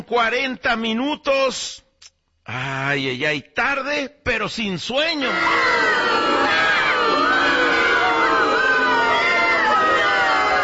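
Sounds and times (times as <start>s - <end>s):
speech: 0.0s - 1.8s, 2.5s - 6.7s
large crowd booing: 5.2s - 10.6s.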